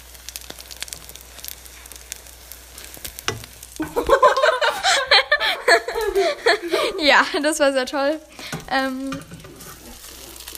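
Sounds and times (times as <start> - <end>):
French toast sizzling in a frying pan: 0.0 - 10.5
people laughing: 3.8 - 7.6
speech: 7.0 - 9.3.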